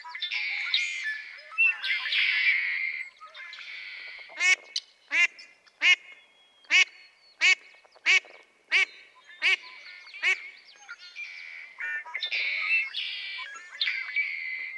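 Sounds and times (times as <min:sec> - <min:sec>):
songbirds chattering and twittering: 0:00.0 - 0:14.7
female mallard quacking: 0:06.7 - 0:10.5.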